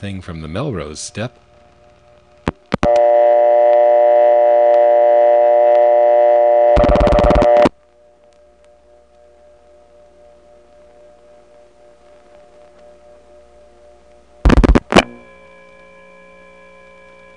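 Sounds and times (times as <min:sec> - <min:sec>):
speech: 0:00.0 - 0:01.5
faint telephone trunk line hum: 0:00.0 - 0:17.3
loud steady metallic hum on step-by-step office telephone trunk line: 0:02.7 - 0:17.3
harsh bursts of noise on telephone trunk line: 0:06.7 - 0:07.7, 0:14.5 - 0:15.3
telephone trunk line from step-by-step office clicking open: 0:06.8 - 0:07.7.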